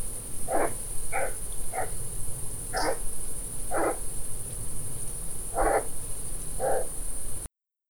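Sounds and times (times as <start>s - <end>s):
European pine marten giving coarse barking calls: 0.5s - 2.0s, 2.7s - 3.1s, 3.7s - 4.1s, 5.5s - 6.0s, 6.6s - 7.0s.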